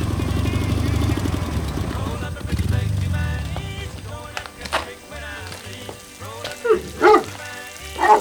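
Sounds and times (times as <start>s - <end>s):
old motorcycle engine rumbling and idling: 0.0s - 8.1s
dog barking in front of a farmhouse: 5.8s - 8.1s.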